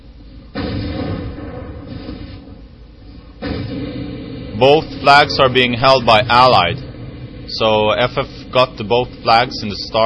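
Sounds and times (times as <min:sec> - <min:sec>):
continuous loud low rumble in a video game battle: 0:00.1 - 0:10.0
tank gunfire booms in a video game battle: 0:00.5 - 0:02.6, 0:03.4 - 0:05.8
speech: 0:04.6 - 0:06.8, 0:07.6 - 0:10.0.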